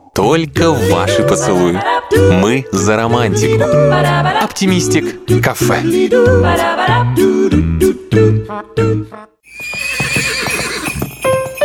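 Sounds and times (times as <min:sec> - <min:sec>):
speech: 0:00.2 - 0:09.3
horse hooves clip-clopping: 0:09.5 - 0:11.6
horse neighing: 0:09.6 - 0:11.0.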